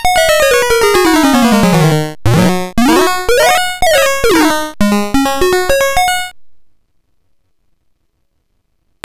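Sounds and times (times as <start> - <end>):
2A03 chip pulse wave tone with delay: 0.1 - 6.1.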